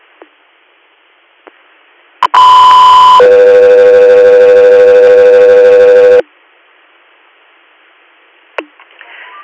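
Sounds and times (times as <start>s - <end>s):
air ambulance dispatch radio paging alert tones in New York: 2.2s - 6.2s.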